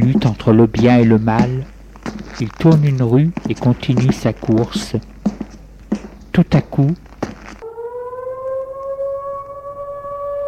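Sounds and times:
speech: 0.2s - 5.1s, 5.9s - 7.0s
alarm siren going off at a jewellery shop: 7.6s - 10.4s.

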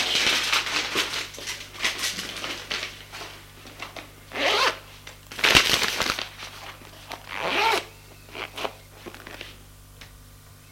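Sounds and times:
letter in envelope rustling into a bag: 0.0s - 7.8s
quick raspy zipper pulls: 4.3s - 4.8s, 7.1s - 9.5s.

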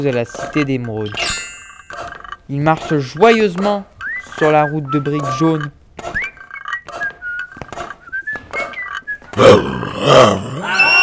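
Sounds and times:
speech: 0.0s - 1.4s, 2.5s - 5.8s
cheerful tonal whistling: 4.0s - 9.4s
lion roaring: 9.3s - 10.9s.

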